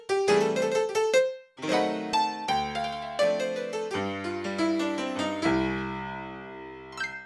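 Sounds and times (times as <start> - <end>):
Yamaha CFIII grand piano: 0.2 - 7.2.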